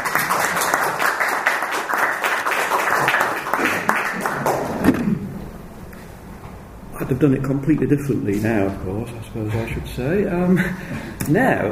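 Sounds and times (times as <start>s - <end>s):
audience applauding: 0.0s - 5.3s
speech: 7.1s - 11.7s.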